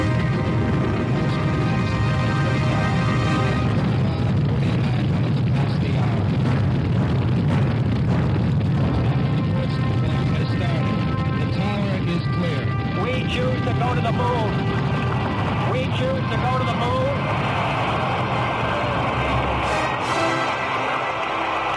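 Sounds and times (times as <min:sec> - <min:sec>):
rocket engines roaring at launch: 0:00.0 - 0:21.7.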